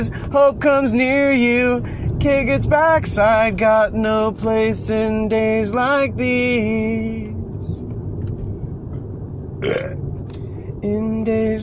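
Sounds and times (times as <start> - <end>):
speech: 0.0 - 7.8, 9.6 - 10.0, 10.8 - 11.6
low steady rumble: 0.0 - 11.6
natural burp: 9.6 - 10.0.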